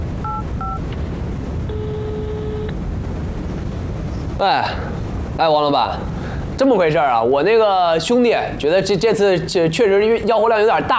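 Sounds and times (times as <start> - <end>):
longer steady electronic phone tone: 0.0 - 4.4
constant loud hiss of noise: 0.0 - 10.9
telephone keypad beeps: 0.2 - 0.8
speech: 4.4 - 10.9.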